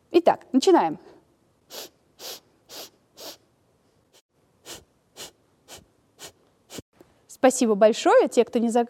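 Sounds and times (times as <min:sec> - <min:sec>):
speech: 0:00.2 - 0:01.1, 0:07.4 - 0:08.8
short sharp breaths during a breathing exercise: 0:01.1 - 0:06.9.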